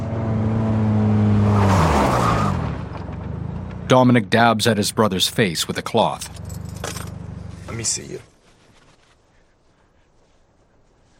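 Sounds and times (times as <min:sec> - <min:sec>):
car engine drone slowing while braking on a highway shoulder: 0:00.0 - 0:08.0
car tire rushing noise on a highway shoulder: 0:00.0 - 0:09.0
speech: 0:03.9 - 0:06.5, 0:07.7 - 0:08.3.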